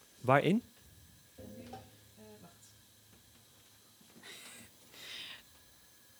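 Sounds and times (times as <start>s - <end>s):
faint noise: 0.0s - 6.1s
speech: 0.2s - 0.7s
butter sizzling in a hot pan on the heat: 1.0s - 6.1s.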